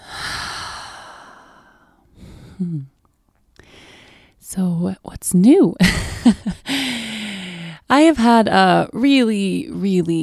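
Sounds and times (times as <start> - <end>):
deep breath in and out: 0.0 - 2.9, 3.6 - 4.4, 6.7 - 7.8
speech: 2.6 - 3.0, 4.5 - 10.2.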